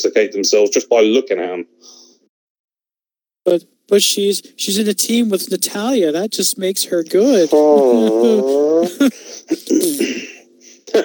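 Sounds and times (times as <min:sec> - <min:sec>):
speech: 0:00.0 - 0:02.0, 0:03.4 - 0:10.3
laughter: 0:07.1 - 0:10.2
mouth-made fart noise: 0:07.3 - 0:10.2.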